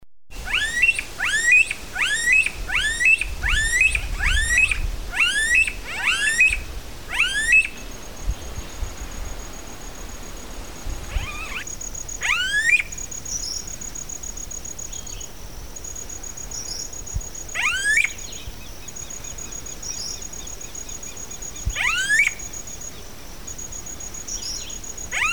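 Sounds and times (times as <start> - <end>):
smooth-billed ani calling: 0.4 - 8.8, 10.2 - 25.3.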